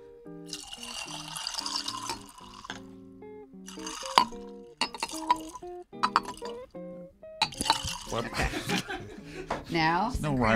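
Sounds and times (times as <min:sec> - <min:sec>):
ginger beer poured into a glass: 0:00.5 - 0:02.8, 0:03.7 - 0:06.6, 0:07.4 - 0:08.3
short sharp glassy clinks and taps: 0:00.5 - 0:02.8, 0:03.7 - 0:06.6, 0:07.4 - 0:08.9
laughter: 0:08.2 - 0:09.7
speech: 0:08.2 - 0:10.5.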